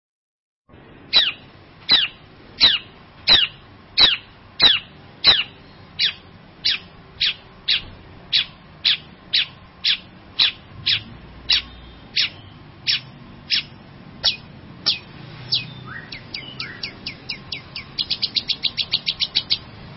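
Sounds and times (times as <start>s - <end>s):
long-tailed shrike singing sharp high clipped notes and stuttering trill: 3.3s - 19.7s.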